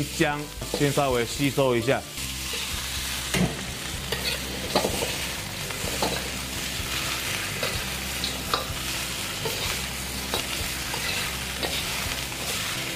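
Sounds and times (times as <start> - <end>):
speech: 0.0 - 2.3
pork stir-frying in a hot pan: 0.0 - 12.9
spatula scraping and clattering against the pan: 4.0 - 8.8, 9.4 - 12.9.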